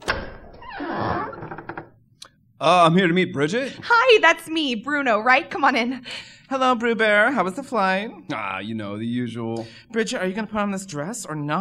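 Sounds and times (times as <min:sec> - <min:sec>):
door opening: 0:00.0 - 0:02.0
speech: 0:02.6 - 0:11.5.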